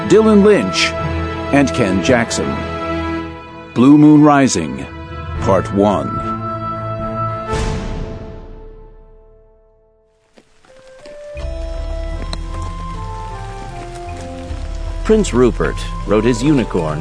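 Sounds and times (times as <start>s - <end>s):
speech: 0.1s - 2.7s, 3.8s - 6.3s, 15.1s - 16.9s
drizzling rain: 10.1s - 16.9s.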